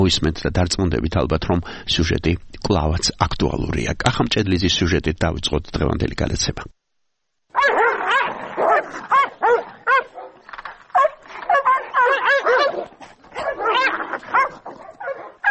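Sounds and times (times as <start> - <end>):
speech: 0.0 - 6.8
Caucasian shepherd dogs fighting in an organised dog-fight contest in a forest: 7.5 - 15.4.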